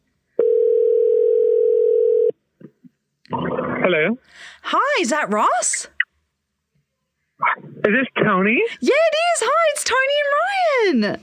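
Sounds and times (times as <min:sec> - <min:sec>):
telephone ringback tone on an outgoing call: 0:00.4 - 0:02.3
speech: 0:03.9 - 0:05.9, 0:07.8 - 0:11.2.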